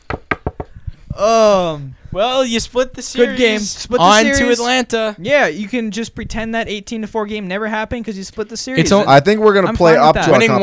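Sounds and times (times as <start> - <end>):
knocking on wood: 0.0 - 0.8
speech: 1.2 - 10.6.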